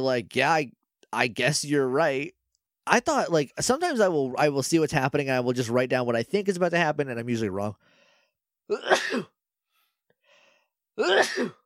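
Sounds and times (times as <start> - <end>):
speech: 0.0 - 7.9, 8.7 - 9.4, 11.0 - 11.6
person sneezing: 8.7 - 9.4, 11.0 - 11.6.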